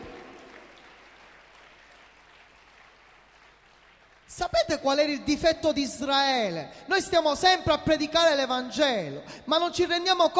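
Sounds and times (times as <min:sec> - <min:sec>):
audience applauding at a church service: 0:00.0 - 0:04.3
speech: 0:04.3 - 0:10.3.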